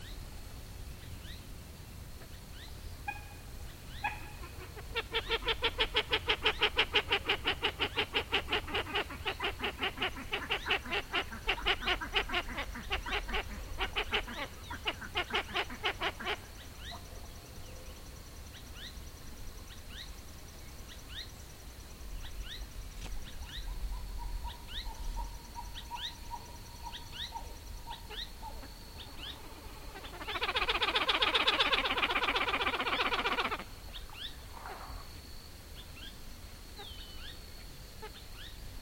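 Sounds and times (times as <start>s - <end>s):
Podilymbus podiceps pied-billed grebe calling: 2.6s - 17.1s, 23.4s - 35.1s.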